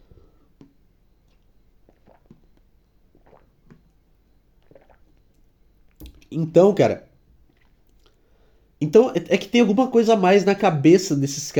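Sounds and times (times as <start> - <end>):
person drinking water with wet gulps and swallows: 0.0 - 6.5, 7.1 - 8.5
speech: 6.3 - 7.1, 8.9 - 11.5.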